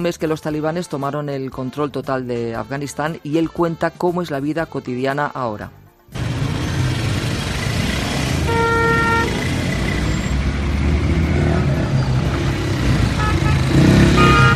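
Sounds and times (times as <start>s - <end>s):
speech: 0.0s - 5.8s
dense street traffic in Kabul Afghanistan: 6.0s - 14.5s
engine revs: 6.2s - 14.5s
car horn tooting: 8.3s - 10.5s, 11.7s - 14.5s.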